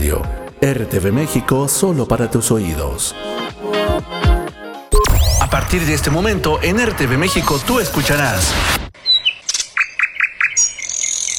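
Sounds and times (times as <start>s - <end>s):
speech: 0.1s - 4.4s, 5.5s - 8.8s
mockingbirds singing: 9.0s - 11.3s.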